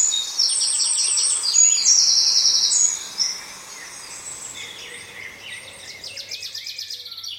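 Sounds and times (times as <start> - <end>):
song thrush singing bright rapid phrases: 0.0 - 7.3
wood pigeons calling: 0.0 - 7.3.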